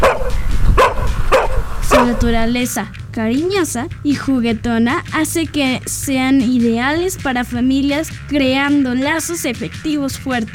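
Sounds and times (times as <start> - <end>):
dog barking: 0.0 - 2.3
speech: 2.0 - 10.5.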